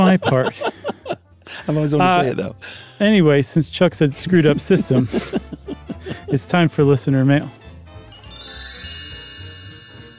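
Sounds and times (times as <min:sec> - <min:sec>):
speech: 0:00.0 - 0:00.8, 0:01.6 - 0:05.4, 0:06.3 - 0:07.6
laughter: 0:00.0 - 0:02.3, 0:04.2 - 0:06.8
bright ringing metallic chime: 0:08.1 - 0:10.1.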